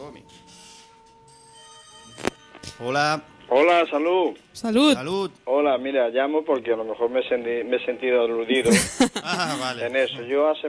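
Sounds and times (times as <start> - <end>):
speech: 0.1 - 0.6, 2.8 - 10.6
telephone ringing with an incoming call: 1.3 - 2.6
laughter: 8.6 - 9.9.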